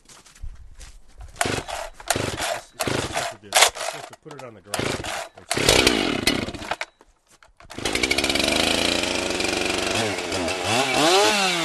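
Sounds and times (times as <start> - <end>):
handling noises: 0.0 - 7.8
chainsaw starter cord pulls: 1.4 - 11.6
speech: 4.3 - 5.0.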